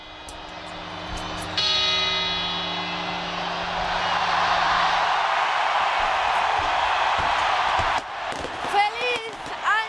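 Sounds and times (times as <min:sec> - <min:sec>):
deep clock bell striking at the Puerta del Sol in Madrid: 0:00.0 - 0:06.5
large outdoor crowd roaring: 0:00.5 - 0:09.8.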